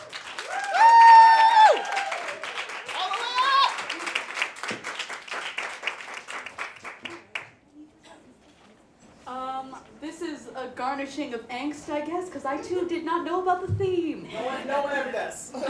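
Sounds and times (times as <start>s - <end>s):
audience whooping and cheering: 0.0s - 4.2s
audience clapping: 0.0s - 7.6s
speech: 11.0s - 15.6s.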